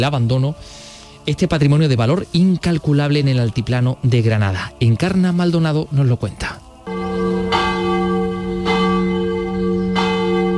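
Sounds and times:
speech: 0.0 - 6.6
church bell tolling: 6.9 - 10.5.

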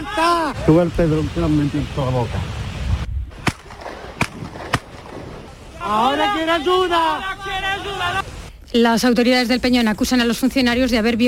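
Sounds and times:
steady outdoor noise: 0.0 - 11.2
speech: 0.2 - 2.6, 5.9 - 11.2
sharp loud cracks: 3.3 - 5.7.

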